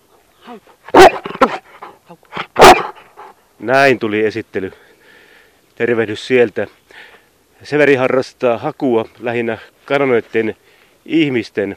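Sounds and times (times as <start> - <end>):
speech: 0.4 - 2.3, 3.6 - 4.8, 5.8 - 11.7
large Hovawart service dog barking on a park path in cool cloudy weather: 0.9 - 1.7, 2.5 - 3.1.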